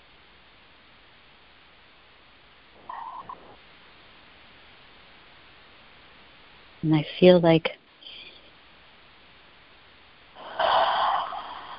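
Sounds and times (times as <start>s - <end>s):
speech: 6.8s - 7.8s
group of people taking a deep breath in together: 10.4s - 11.7s.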